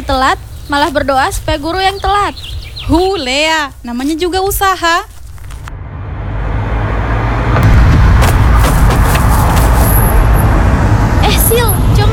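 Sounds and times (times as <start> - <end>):
speech: 0.1 - 5.1
cars rumbling past: 5.4 - 12.1.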